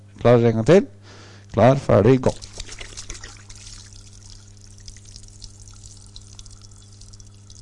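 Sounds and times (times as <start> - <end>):
constant low hum: 0.0 - 7.6
speech: 0.2 - 2.5
water pouring out of a spun bottle: 2.3 - 7.6.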